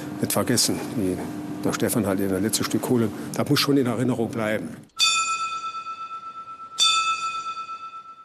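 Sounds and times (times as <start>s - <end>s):
speech: 0.2s - 4.9s
coal mine signal bell ringing on a wooden board in a mine's machine hall: 4.9s - 8.2s.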